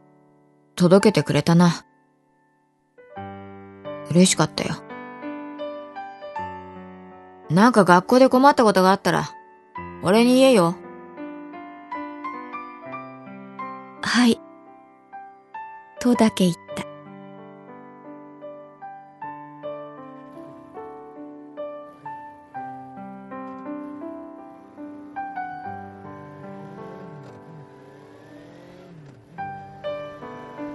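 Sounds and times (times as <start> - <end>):
speech: 0.8 - 1.9, 4.1 - 4.9, 7.5 - 10.8, 14.2 - 14.4, 16.0 - 16.6
motorcycle with passenger revving and riding: 21.8 - 30.7.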